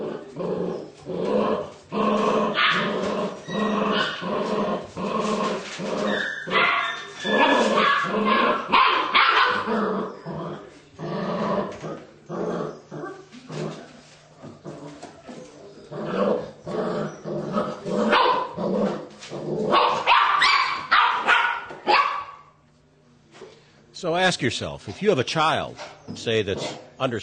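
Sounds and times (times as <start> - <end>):
puppy growling at another puppy: 0.0 - 20.0
puppy barking at another puppy: 2.6 - 2.9, 6.2 - 9.7, 18.1 - 18.6, 19.7 - 22.5
speech: 24.4 - 27.2.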